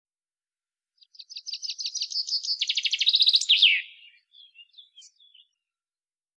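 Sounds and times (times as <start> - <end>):
Common chaffinch Fringilla coelebs song: 1.0 - 5.8.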